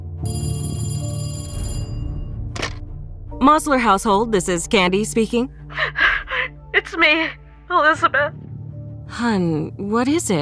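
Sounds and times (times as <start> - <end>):
telephone metallic bell ringing in a Houston household in 1961: 0.2 - 2.8
short clunk: 1.7 - 2.9
speech: 3.4 - 6.0, 6.8 - 8.4, 9.1 - 10.4.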